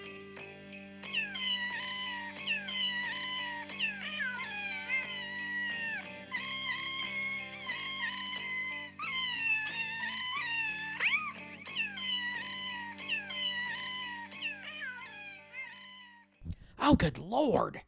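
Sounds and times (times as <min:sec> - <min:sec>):
pitched cat meows edited into a holiday tune: 0:01.1 - 0:16.2
speech: 0:16.9 - 0:17.8.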